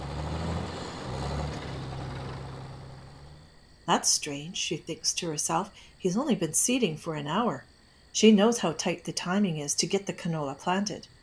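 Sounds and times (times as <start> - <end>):
old service truck engine rumbling driving over a hill: 0.0 - 5.2
broad road noise: 0.0 - 5.4
speech: 3.9 - 11.1.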